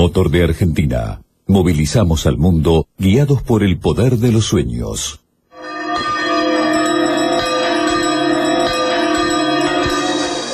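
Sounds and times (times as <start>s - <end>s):
speech: 0.0s - 5.2s
two bells ringing: 5.5s - 10.5s.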